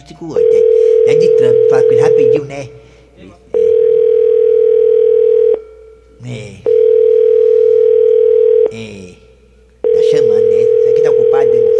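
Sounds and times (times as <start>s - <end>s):
telephone busy signal: 0.0s - 2.5s, 3.5s - 5.7s, 6.6s - 8.7s, 9.8s - 11.7s
speech: 0.2s - 3.4s, 6.2s - 6.6s.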